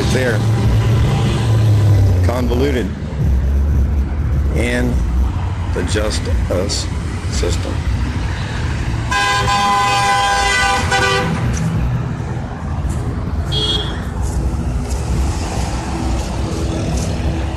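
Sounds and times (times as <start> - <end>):
steady rumble of traffic: 0.0 - 17.5
speech: 0.1 - 0.6, 2.3 - 3.0, 4.6 - 5.1, 5.7 - 7.9
car horn honking in traffic: 9.1 - 11.5, 13.5 - 14.0.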